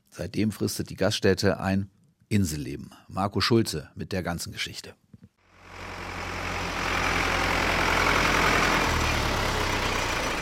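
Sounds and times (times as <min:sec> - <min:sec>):
speech: 0:00.2 - 0:05.0
tractor engine running: 0:05.5 - 0:10.4.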